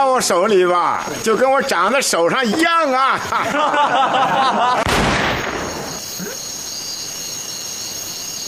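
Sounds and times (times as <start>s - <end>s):
speech: 0.0s - 5.2s
laughter: 2.2s - 4.9s
Browning pistol accidentally going off: 4.8s - 5.9s.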